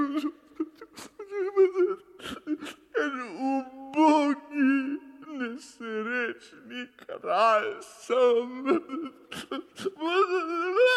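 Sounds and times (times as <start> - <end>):
man whimpering and crying: 0.0 - 6.0, 6.8 - 10.9.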